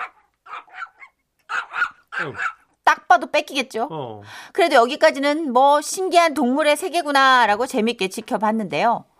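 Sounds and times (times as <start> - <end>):
dog barking timidly beside a rooster in a yard: 0.0 - 2.7
speech: 2.2 - 9.1.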